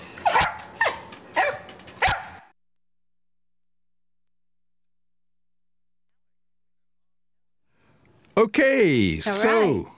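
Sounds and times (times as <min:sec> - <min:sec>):
dog barking: 0:00.2 - 0:02.5
speech: 0:08.6 - 0:09.9.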